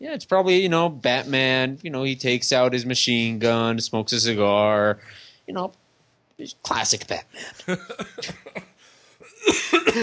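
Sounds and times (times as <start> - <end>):
speech: 0.0 - 5.8, 6.4 - 8.7, 9.4 - 10.0
laughter: 7.6 - 8.8
person in a harsh forceful hacking coughing fit: 7.9 - 10.0.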